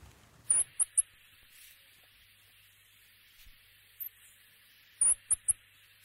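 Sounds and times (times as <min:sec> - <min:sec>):
soft steady hiss: 0:00.0 - 0:06.0
New Zealand rock wren calling: 0:00.5 - 0:01.2, 0:05.0 - 0:05.6.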